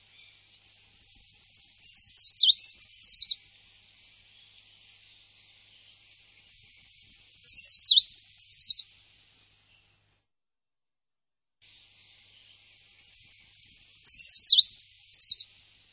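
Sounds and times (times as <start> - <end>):
bird twittering: 0.2 - 3.4, 4.5 - 8.8, 12.7 - 15.5.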